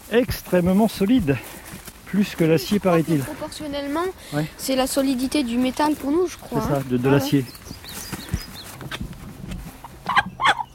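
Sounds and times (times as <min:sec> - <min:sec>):
speech: 0:00.1 - 0:07.8
sturdy rooster clucking: 0:09.8 - 0:10.7.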